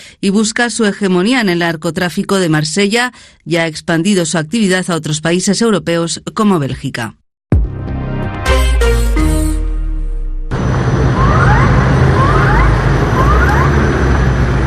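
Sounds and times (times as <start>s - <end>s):
speech: 0.2s - 7.2s
short musical sting: 7.5s - 11.7s
dense outdoor city noise: 10.4s - 14.6s
emergency sirens echoing through city streets: 10.5s - 14.6s.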